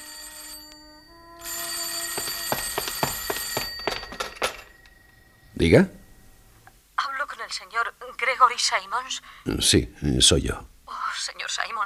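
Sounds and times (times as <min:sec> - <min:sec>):
telephone bell ringing: 0:00.0 - 0:05.7
quiet hum: 0:03.2 - 0:11.0
speech: 0:05.6 - 0:06.0, 0:08.6 - 0:10.7.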